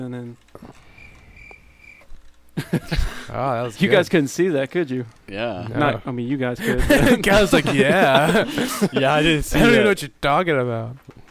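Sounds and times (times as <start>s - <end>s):
speech: 0.0s - 0.9s, 2.6s - 11.2s
quiet hiss: 0.0s - 11.2s
cricket trilling: 0.9s - 2.1s
laughter: 2.6s - 4.1s, 6.6s - 10.0s.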